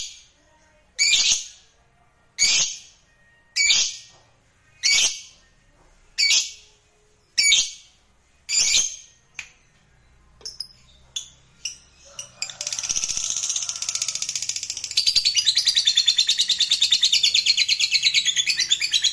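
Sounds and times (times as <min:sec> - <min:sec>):
lovebird chirps and chattering trill: 0:01.0 - 0:01.6, 0:02.4 - 0:03.0, 0:03.6 - 0:04.1, 0:04.8 - 0:05.4, 0:06.2 - 0:06.6, 0:07.4 - 0:07.9, 0:08.5 - 0:09.1, 0:10.4 - 0:19.1.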